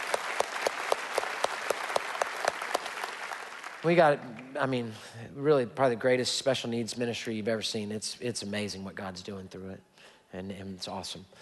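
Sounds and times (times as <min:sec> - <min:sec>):
audience applauding: 0:00.0 - 0:04.7
speech: 0:03.8 - 0:11.4.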